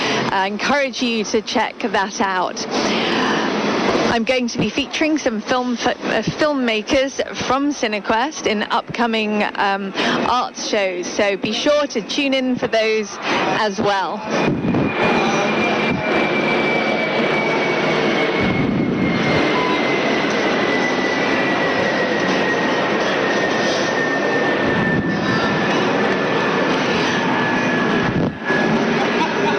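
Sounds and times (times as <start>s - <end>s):
airplane passing overhead: 0.0s - 0.6s, 1.3s - 5.0s, 8.1s - 29.5s
speech: 0.3s - 3.2s, 4.1s - 15.2s
laughter: 28.8s - 29.5s.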